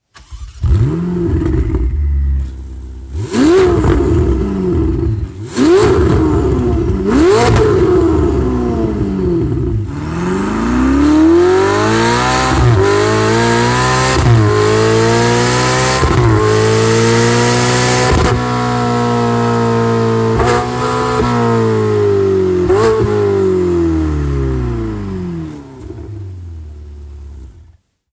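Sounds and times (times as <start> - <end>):
Ferrari 488 Italia with titanium slip-on exhaust: 0.6 - 27.8.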